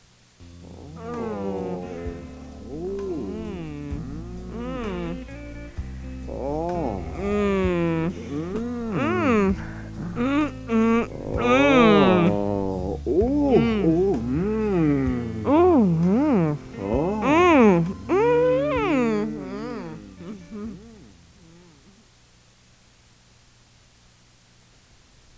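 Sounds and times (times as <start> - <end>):
person moaning: 0.6 - 22.0.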